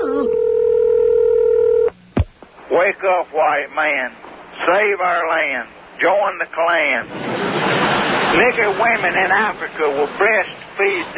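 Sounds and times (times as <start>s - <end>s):
telephone dial tone: 0.2s - 1.9s
speech: 3.0s - 11.1s.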